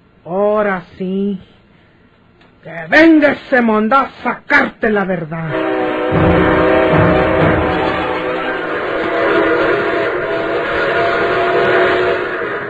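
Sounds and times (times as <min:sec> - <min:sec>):
speech: 0:00.2 - 0:01.6, 0:02.6 - 0:07.7
northbound train travelling: 0:05.9 - 0:12.6.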